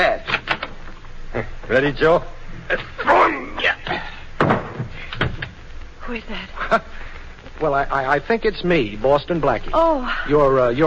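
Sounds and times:
speech: 0:01.7 - 0:04.1, 0:06.1 - 0:07.0, 0:07.6 - 0:10.8
heavy thud of a man thrown into a room: 0:04.4 - 0:05.4
door banging: 0:04.4 - 0:05.5.

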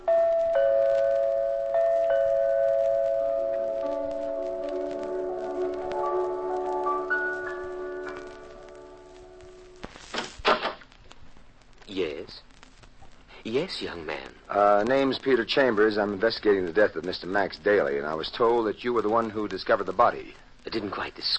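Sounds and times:
apartment doorbell ringing: 0:00.0 - 0:09.0
sustained ringing piano music: 0:00.0 - 0:09.8
speech: 0:13.6 - 0:21.3.

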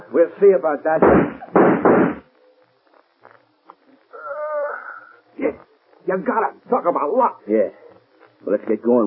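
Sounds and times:
speech: 0:00.1 - 0:02.1, 0:06.1 - 0:07.8, 0:08.4 - 0:09.0
gunshots fired at a man: 0:01.0 - 0:02.3.

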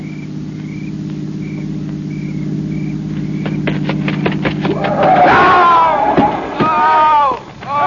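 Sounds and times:
car engine humming: 0:00.0 - 0:07.8
sharp knocks and thumps: 0:02.7 - 0:07.0
excited voices: 0:04.7 - 0:07.8.

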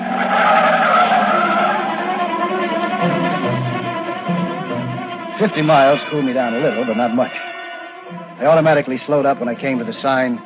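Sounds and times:
speeding car engine roaring: 0:00.0 - 0:07.1
speeding car tires squealing: 0:00.0 - 0:10.4
speech: 0:05.4 - 0:07.5, 0:08.1 - 0:10.4.

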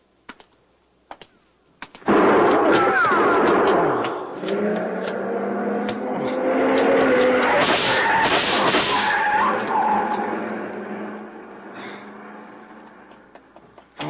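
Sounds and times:
sharp gunshots fired from a passing car: 0:02.0 - 0:05.2, 0:05.8 - 0:09.7.

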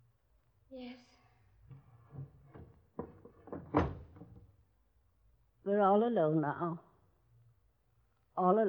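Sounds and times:
speech: 0:00.7 - 0:01.1, 0:05.7 - 0:06.9, 0:08.4 - 0:08.6
faint rattle: 0:01.5 - 0:04.7
wooden knocks and scrapes: 0:01.6 - 0:04.6.

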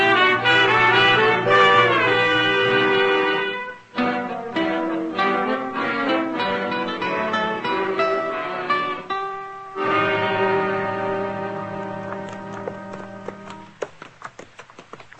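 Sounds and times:
sustained ringing musical tones: 0:00.0 - 0:13.3
horses' hooves clip-clopping at a walk: 0:11.8 - 0:15.1.

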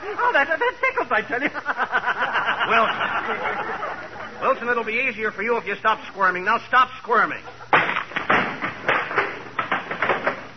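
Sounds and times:
laughter: 0:00.0 - 0:04.8, 0:07.2 - 0:08.0
speech: 0:00.3 - 0:01.7, 0:04.6 - 0:07.6
wooden chair breaking apart: 0:07.7 - 0:10.5.

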